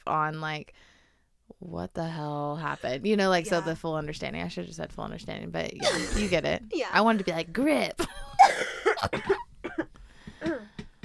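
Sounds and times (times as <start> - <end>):
speech: 0.0 - 0.9, 1.5 - 9.4
person coughing: 5.8 - 6.4, 8.0 - 10.8.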